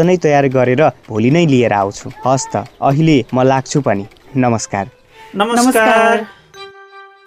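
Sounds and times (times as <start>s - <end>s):
speech: 0.0s - 6.4s
WhatsApp incoming call ringtone on a phone: 5.4s - 6.7s.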